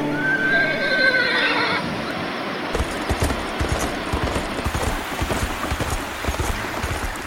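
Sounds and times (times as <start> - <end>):
trotter horse neighing: 0.1 - 1.9
trotter hooves clip-clopping: 2.6 - 7.2.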